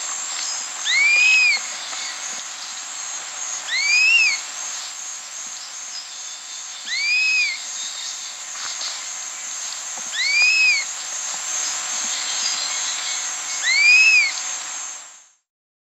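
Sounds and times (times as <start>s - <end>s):
constant high-pitched insect noise: 0.0s - 15.4s
chestnut-capped puffbird slurred whistles in South America: 3.7s - 4.4s, 6.9s - 7.6s, 10.1s - 10.8s, 13.6s - 14.4s.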